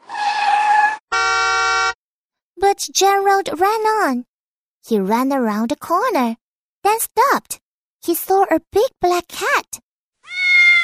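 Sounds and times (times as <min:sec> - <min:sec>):
car tyre skid screech in road traffic: 0:00.0 - 0:01.0
car horn blast in road traffic: 0:01.1 - 0:02.0
speech: 0:02.7 - 0:10.4.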